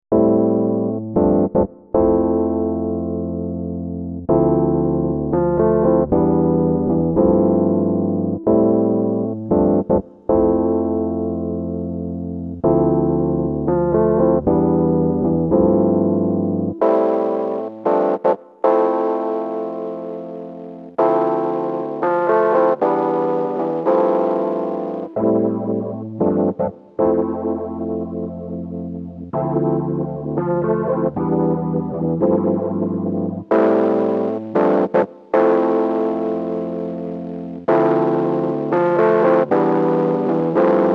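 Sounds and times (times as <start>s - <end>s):
tape lo-fi electric piano: 0.1s - 40.9s.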